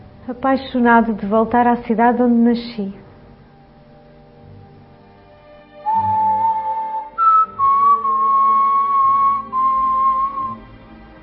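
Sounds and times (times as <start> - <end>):
speech: 0.3 - 3.0
person whistling a slow tune: 5.8 - 10.6.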